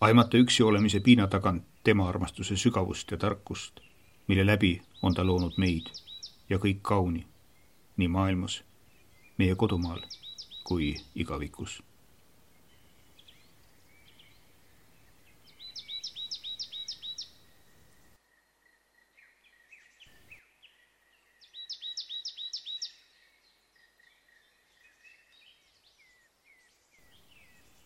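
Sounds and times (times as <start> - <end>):
speech: 0.0 - 7.3, 8.0 - 8.7, 9.4 - 11.9
wild Estonian bird chirps and calls outdoors: 0.0 - 11.8, 12.4 - 18.2, 19.0 - 27.8
wild Estonian birds trilling outdoors: 0.0 - 11.8, 12.6 - 18.1.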